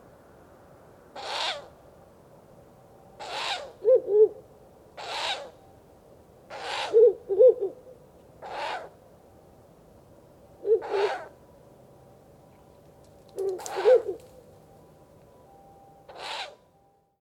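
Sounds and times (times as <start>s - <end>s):
owl pair giving breathy hissing bursts: 1.2s - 1.7s, 3.2s - 3.7s, 5.0s - 5.5s, 6.5s - 7.1s, 8.4s - 8.9s, 10.7s - 11.3s, 16.1s - 16.6s
short low owl hoots: 1.2s - 1.7s, 3.2s - 4.4s, 5.0s - 5.6s, 6.5s - 7.8s, 8.4s - 9.0s, 10.6s - 11.4s, 13.3s - 14.4s, 16.1s - 16.6s.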